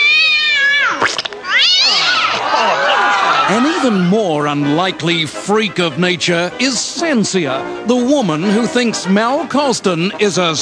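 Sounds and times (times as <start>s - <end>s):
cat caterwauling: 0.0s - 2.5s
laughter: 2.2s - 4.2s, 8.3s - 9.4s
speech: 3.5s - 10.6s.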